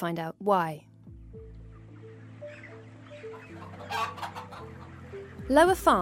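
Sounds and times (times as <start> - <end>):
speech: 0.0 - 1.5, 3.9 - 6.0
chickens clucking in a chicken shed on a farm in Derbyshire England: 1.5 - 5.6.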